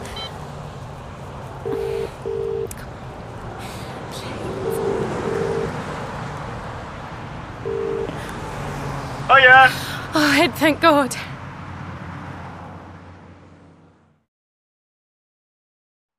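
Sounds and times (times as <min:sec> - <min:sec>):
short electronic phone tones beeping in pairs: 0:00.0 - 0:00.4, 0:01.7 - 0:02.7, 0:04.6 - 0:05.8, 0:07.6 - 0:08.2
steady rumble of road traffic: 0:00.0 - 0:14.2
speech: 0:09.3 - 0:11.3.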